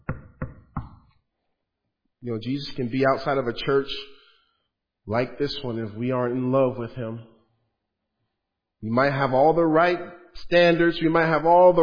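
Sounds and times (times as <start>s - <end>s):
knocks on a wooden surface: 0.0s - 1.0s
speech: 2.2s - 4.2s, 5.1s - 7.3s, 8.8s - 11.8s.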